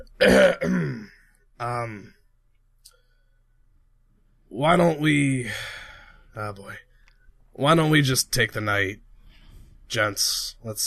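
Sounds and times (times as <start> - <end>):
man clearing his throat awkwardly: 0.0 - 1.1
speech: 0.0 - 2.2, 4.5 - 5.8, 6.4 - 6.8, 7.6 - 9.0, 9.9 - 10.8.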